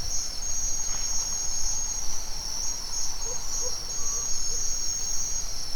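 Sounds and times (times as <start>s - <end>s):
crickets shrill drone in a forest at dawn in Mexico: 0.1s - 5.7s.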